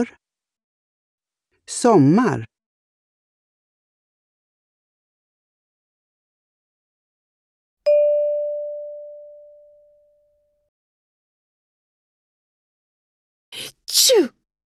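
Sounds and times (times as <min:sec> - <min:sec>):
speech: 0:00.0 - 0:00.2, 0:01.7 - 0:02.5
single bell chime: 0:07.9 - 0:10.4
person allergic to pollen sneezing: 0:13.6 - 0:14.4.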